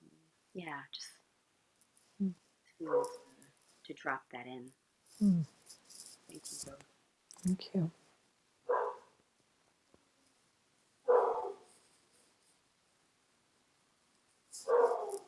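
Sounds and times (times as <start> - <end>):
speech: 0.6 - 1.2, 2.2 - 3.3, 3.9 - 5.6, 6.3 - 8.0
dog barking: 2.8 - 3.4, 8.7 - 9.2, 11.1 - 11.7, 14.6 - 15.2.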